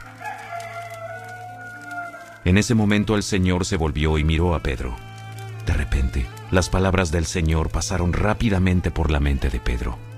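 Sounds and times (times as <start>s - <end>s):
rooster crowing: 0.0s - 2.5s
speech: 2.4s - 10.1s.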